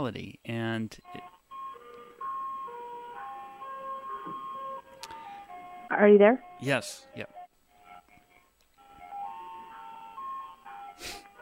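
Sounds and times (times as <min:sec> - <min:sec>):
speech: 0:00.0 - 0:01.1, 0:05.9 - 0:07.4
ice cream truck jingle playing outside an apartment as the truck drives past: 0:00.6 - 0:11.4.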